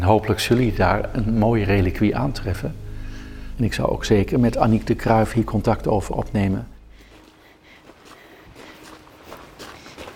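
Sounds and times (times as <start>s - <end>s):
faint ambience in a garden: 0.0s - 10.1s
speech: 0.1s - 2.8s, 3.6s - 6.7s
footsteps crunching on a garden path of a bishop's palace: 6.8s - 10.1s.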